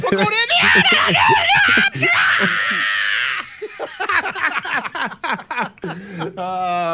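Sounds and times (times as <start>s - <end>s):
person talking excitedly: 0.0s - 2.8s
laughter: 0.0s - 6.9s
person imitating a politician's scream: 0.3s - 3.6s.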